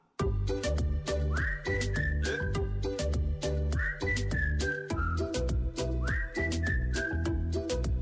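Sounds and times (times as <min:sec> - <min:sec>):
bass-heavy backing music: 0:00.2 - 0:07.9
person whistling a short descending melody: 0:01.1 - 0:02.7, 0:03.6 - 0:07.9.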